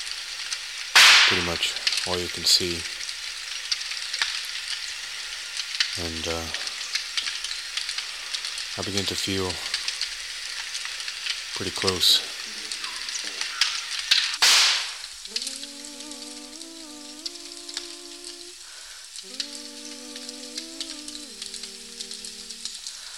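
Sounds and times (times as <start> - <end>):
fire crackling and hissing: 0.0 - 23.1
sharp loud pop of the fire: 1.0 - 1.4, 14.4 - 15.0
speech: 1.3 - 3.0, 6.0 - 6.7, 8.8 - 9.7, 11.6 - 12.4
two long steady droning tones: 15.2 - 23.0.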